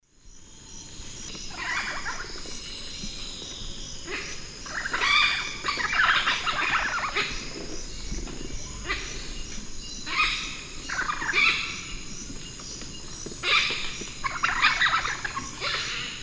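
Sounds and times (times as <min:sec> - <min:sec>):
Orthopsitta manilata calling in the Eastern Lowlands of South America: 0:01.5 - 0:02.3, 0:04.1 - 0:07.4, 0:10.1 - 0:11.9, 0:13.4 - 0:16.2.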